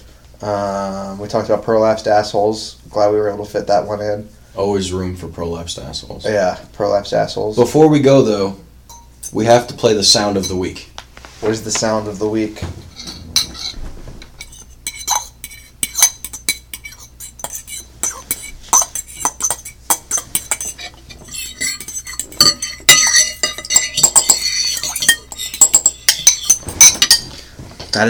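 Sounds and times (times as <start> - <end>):
speech: 0.4 - 8.6, 9.3 - 12.8
forks clinking and scraping on porcelain plates while eating ravioli in tomato sauce: 8.9 - 9.6, 10.2 - 10.6, 12.8 - 13.8, 14.4 - 27.4.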